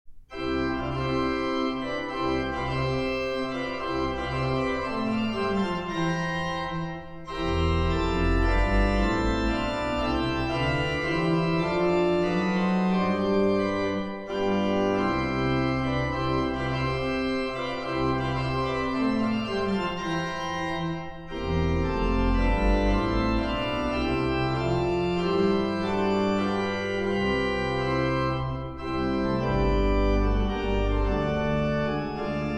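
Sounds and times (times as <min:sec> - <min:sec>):
organ sonata allegro: 0:00.3 - 0:32.5.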